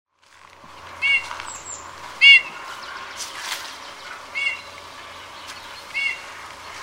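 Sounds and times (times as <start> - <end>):
Eurasian bullfinch soft plaintive whistled calls: 1.0 - 6.3.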